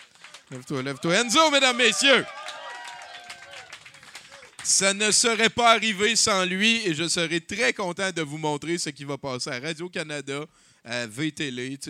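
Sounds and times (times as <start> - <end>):
people cheering: 0.0 - 5.0
audience applauding a magician: 0.0 - 5.4
speech: 0.5 - 2.4, 4.7 - 11.8.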